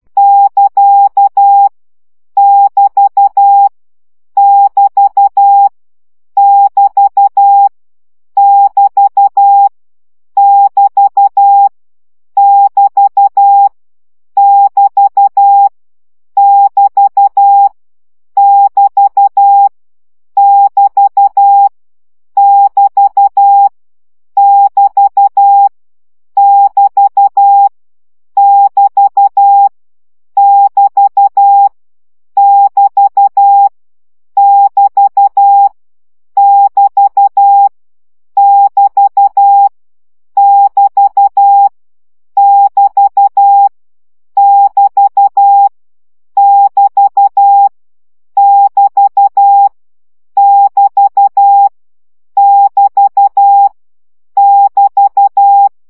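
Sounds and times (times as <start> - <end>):
Morse code practice beeps at 10 baud: 0.2 - 1.7, 2.4 - 3.7, 4.4 - 5.7, 6.4 - 7.7, 8.4 - 9.7, 10.4 - 11.7, 12.4 - 13.7, 14.4 - 15.7, 16.4 - 17.7, 18.4 - 19.7, 20.4 - 21.7, 22.4 - 23.7, 24.4 - 25.7, 26.4 - 27.7, 28.4 - 29.7, 30.4 - 31.8, 32.4 - 33.7, 34.4 - 35.8, 36.4 - 37.7, 38.4 - 39.7, 40.4 - 41.8, 42.4 - 43.7, 44.4 - 45.7, 46.4 - 47.8, 48.4 - 49.8, 50.4 - 51.7, 52.4 - 53.8, 54.4 - 55.8.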